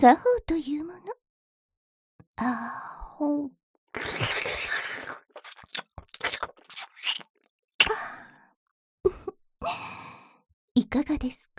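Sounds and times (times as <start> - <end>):
speech: 0.0 - 0.9, 2.4 - 4.5, 10.9 - 11.5
woman making wet licking and slurping mouth sounds: 3.9 - 7.5.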